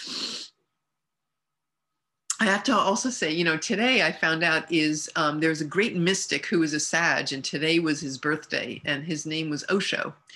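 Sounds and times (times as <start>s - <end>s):
breathy nasal sniffle: 0.0s - 0.6s
speech: 2.4s - 10.3s.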